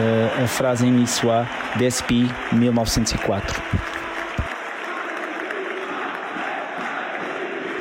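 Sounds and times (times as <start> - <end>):
speech: 0.0 - 3.9
large stadium crowd singing the unofficial city anthem a cappella: 3.5 - 7.7.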